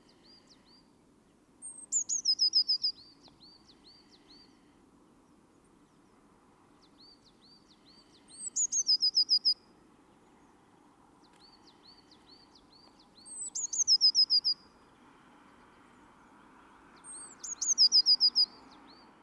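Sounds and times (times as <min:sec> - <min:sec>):
Eurasian blue tit soft ticking notes: 0:00.0 - 0:14.9
Eurasian blue tit Cyanistes caeruleus song: 0:00.0 - 0:16.2, 0:16.9 - 0:19.1.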